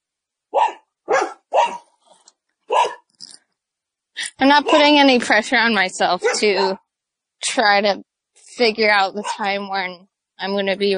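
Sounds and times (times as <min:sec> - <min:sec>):
neighborhood dog barking: 0:00.5 - 0:02.0, 0:02.7 - 0:03.1, 0:04.6 - 0:05.0, 0:06.2 - 0:06.8, 0:09.2 - 0:09.5
neighborhood dog yipping softly: 0:00.6 - 0:01.9, 0:02.7 - 0:03.0
speech: 0:04.4 - 0:06.8, 0:07.4 - 0:10.9.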